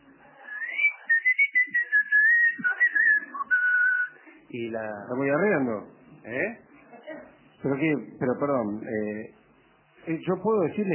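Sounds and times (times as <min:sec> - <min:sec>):
person whistling a wavering tune: 0:00.5 - 0:04.2
speech: 0:04.5 - 0:06.7, 0:07.6 - 0:09.4, 0:10.0 - 0:10.9.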